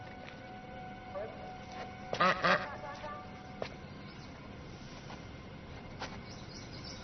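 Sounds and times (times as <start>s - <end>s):
duck quacking: 2.1s - 3.3s
speech: 2.2s - 2.5s.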